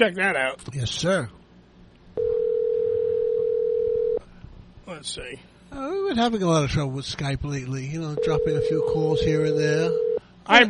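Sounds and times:
speech: 0.0s - 1.4s, 4.9s - 10.6s
phone dial tone of an outgoing call: 2.2s - 4.2s, 8.2s - 10.2s.

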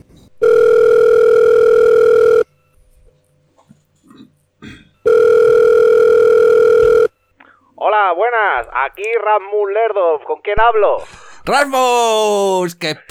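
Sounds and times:
electronic ringback tones on an outgoing phone call: 0.4s - 2.7s, 5.1s - 7.2s
speech: 8.0s - 13.0s.

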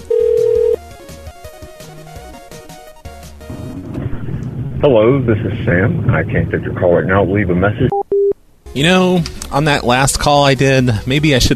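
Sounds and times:
electronic ringback tone of an outgoing call to a cell phone: 0.0s - 0.8s
speech: 4.8s - 8.0s, 8.8s - 11.5s.

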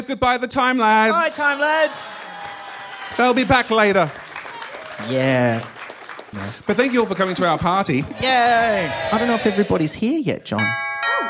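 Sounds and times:
speech: 0.1s - 2.3s, 3.1s - 4.2s, 5.0s - 10.8s
doorbell chiming: 10.6s - 11.2s.

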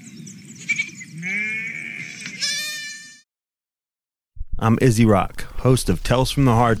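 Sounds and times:
sheep bleating: 1.2s - 3.2s
speech: 4.6s - 6.7s.

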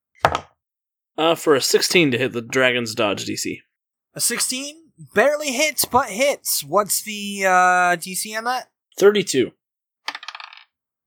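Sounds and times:
speech: 1.2s - 9.6s
two dice rolled across a hard table: 10.1s - 10.8s.

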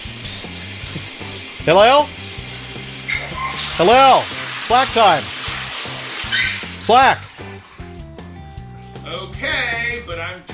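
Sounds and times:
shower water running in a bathroom: 0.0s - 8.7s
speech: 1.6s - 2.2s, 3.8s - 5.3s, 6.9s - 7.2s
person calling out: 3.8s - 5.3s, 6.8s - 7.2s.

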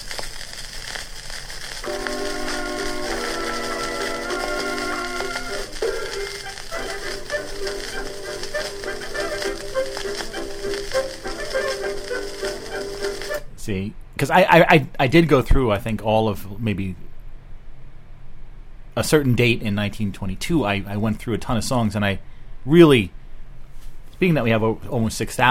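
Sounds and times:
old 1920s dance orchestra record with horns: 0.0s - 13.5s
scratchy record crackle and hiss: 0.0s - 25.4s
speech: 13.7s - 17.0s, 19.0s - 23.2s, 24.2s - 25.4s.

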